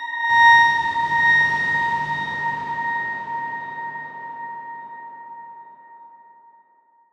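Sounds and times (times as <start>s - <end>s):
dark swarm tone A sharp five played very softly: 0.3s - 5.7s.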